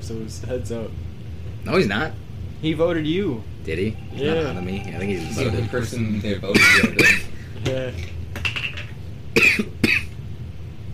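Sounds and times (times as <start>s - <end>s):
speech: 0.1s - 8.2s
low steady hum: 0.8s - 10.8s
person coughing: 6.6s - 7.3s, 9.4s - 10.1s.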